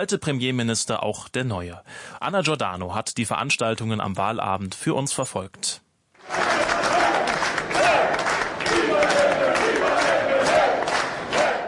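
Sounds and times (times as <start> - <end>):
speech: 0.0 - 6.4
faint rhythmic chanting: 6.2 - 11.6
party supporters cheering at vote count: 6.2 - 11.6.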